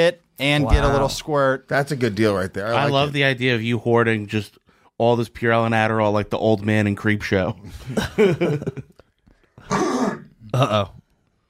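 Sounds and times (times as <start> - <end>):
speech: 0.0 - 8.9, 9.7 - 11.0
laughter: 7.6 - 9.0
person coughing into a microphone: 9.6 - 11.0.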